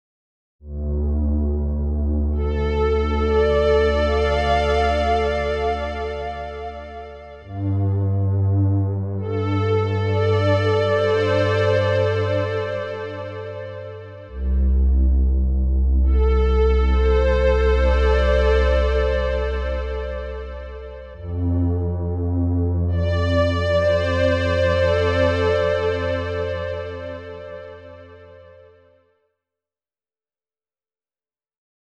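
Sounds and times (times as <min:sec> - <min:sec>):
ambient strings on a Roland JU-06 synthesizer: 0:00.7 - 0:28.8.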